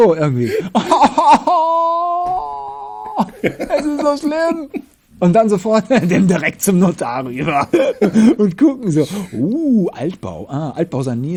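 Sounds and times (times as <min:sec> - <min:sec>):
speech: 0:00.0 - 0:02.4, 0:03.2 - 0:11.3
laughter: 0:00.3 - 0:09.5
voice imitating exaggerated crying at a funeral: 0:01.2 - 0:04.8, 0:07.2 - 0:08.3.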